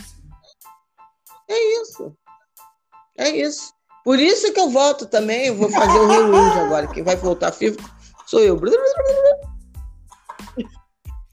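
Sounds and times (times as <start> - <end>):
speech: 1.5 - 2.2, 3.2 - 9.5, 10.6 - 10.8
laughter: 5.7 - 7.8
voice imitating a cassette tape rewinding: 8.6 - 9.4.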